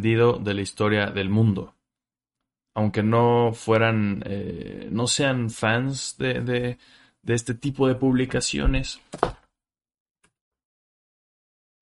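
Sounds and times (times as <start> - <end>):
speech: 0.0 - 1.8, 2.8 - 9.4
chair shifting with a dull creaking thump: 9.1 - 9.5.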